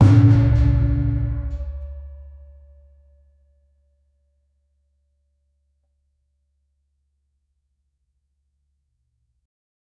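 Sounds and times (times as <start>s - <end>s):
dramatic tonal cinematic Javanese music: 0.0s - 2.2s.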